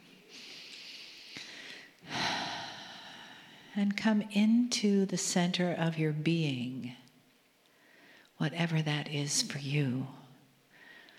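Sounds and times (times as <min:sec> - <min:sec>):
soft airy breathing during a guided relaxation: 0:00.1 - 0:03.8, 0:07.6 - 0:08.4, 0:10.7 - 0:11.1
deep breath drawn in during a guided relaxation: 0:00.3 - 0:03.8, 0:10.7 - 0:11.1
speech: 0:03.8 - 0:07.0, 0:08.4 - 0:10.2.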